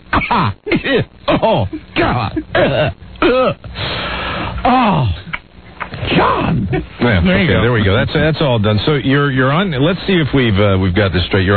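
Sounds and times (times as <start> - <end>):
person coughing in a fit: 0.1 - 3.6
speech: 0.2 - 5.2, 6.0 - 11.5
person gasping: 3.6 - 5.3.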